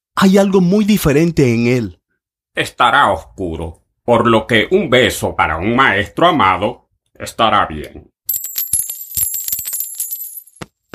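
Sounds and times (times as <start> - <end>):
speech: 0.2 - 2.0, 2.6 - 8.1
metal coins clinking and jingling together: 8.3 - 10.7.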